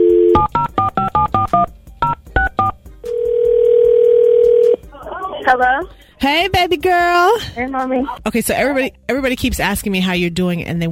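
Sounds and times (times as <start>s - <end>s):
steady continuous phone tone: 0.0s - 1.5s, 2.4s - 4.8s
speech: 5.5s - 10.9s.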